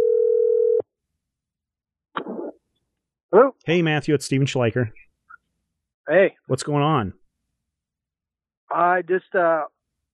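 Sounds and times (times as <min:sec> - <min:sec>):
phone dial tone while calling a mobile phone: 0:00.0 - 0:00.9
speech: 0:03.3 - 0:05.0, 0:06.1 - 0:07.2, 0:08.7 - 0:09.7.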